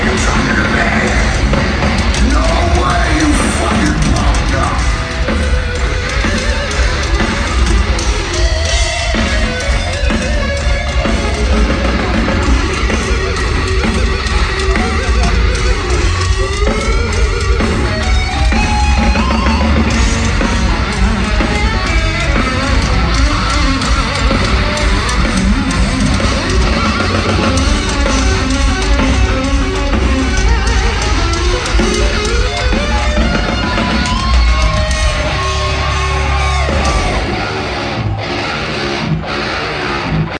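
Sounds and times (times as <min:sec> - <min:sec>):
crowd roar at a live concert: 0:00.0 - 0:40.3
dense band playing at a live concert: 0:00.0 - 0:40.3
wailing distorted lead guitar solo at a live concert: 0:00.0 - 0:40.3.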